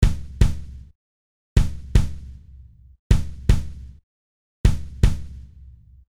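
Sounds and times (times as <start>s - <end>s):
kick drum with parallel blend: 0.0s - 0.9s, 1.6s - 4.0s, 4.7s - 5.6s.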